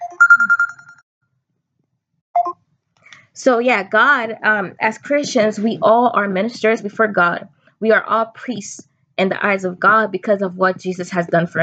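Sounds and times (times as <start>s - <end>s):
phone ringtone ringing: 0.0s - 1.0s
speech: 3.4s - 11.6s.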